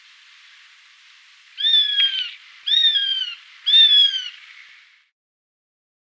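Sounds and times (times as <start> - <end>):
Eurasian sparrowhawk cries: 1.6 - 4.6.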